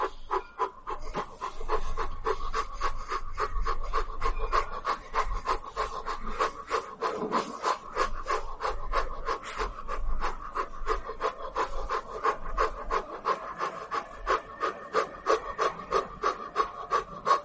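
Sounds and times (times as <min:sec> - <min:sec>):
fast rhythmic breathing in and out through the mouth for meditation: 0:00.0 - 0:17.4.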